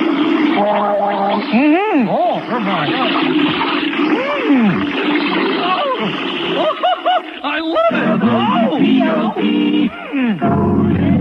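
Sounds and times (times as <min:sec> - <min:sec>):
water splashing and sloshing as someone gets into a bathtub: 0:00.0 - 0:07.9
gurgling swooping tones rising and falling: 0:00.0 - 0:11.1
speech: 0:00.6 - 0:05.3
laughter: 0:05.5 - 0:10.5.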